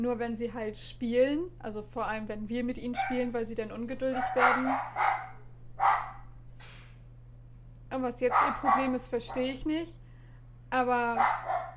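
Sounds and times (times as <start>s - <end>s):
speech: 0.0s - 5.2s, 7.9s - 10.0s, 10.7s - 11.7s
steady low electrical hum: 0.0s - 11.7s
dogs barking: 2.9s - 3.3s, 4.0s - 6.3s, 8.2s - 9.6s, 11.1s - 11.7s.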